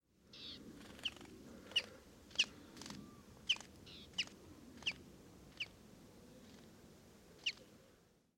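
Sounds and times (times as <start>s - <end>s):
common chaffinch Fringilla coelebs sharp high chink calls: 0.3s - 5.8s, 7.4s - 7.7s.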